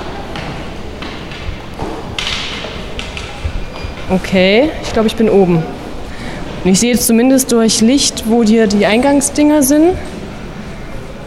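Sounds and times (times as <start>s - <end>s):
white cane tapping on stairs at a post office entrance: 0.0s - 4.2s
speech: 4.1s - 5.8s, 6.6s - 10.2s.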